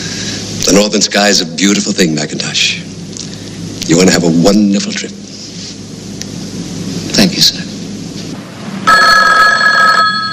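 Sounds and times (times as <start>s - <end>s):
speech: 0.7s - 2.9s, 3.9s - 5.2s, 7.2s - 7.6s
telephone on an office desk ringing with an electronic trill: 8.8s - 10.3s.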